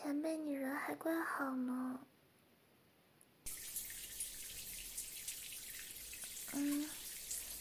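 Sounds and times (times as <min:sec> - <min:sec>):
speech: 0:00.0 - 0:02.1, 0:06.6 - 0:07.0
shower head spraying running water: 0:03.5 - 0:07.5.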